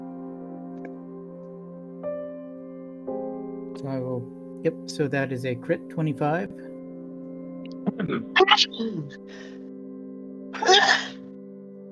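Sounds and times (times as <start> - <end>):
speech: 3.8 - 6.7, 8.0 - 9.6
sharp sneeze: 10.6 - 11.1.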